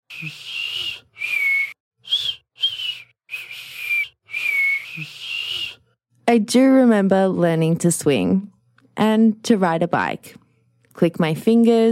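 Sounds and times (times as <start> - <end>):
adult failing to whistle with breathy hissing blows: 0.1 - 5.8
speech: 0.2 - 0.6, 5.0 - 5.2, 6.3 - 10.4, 11.0 - 11.9.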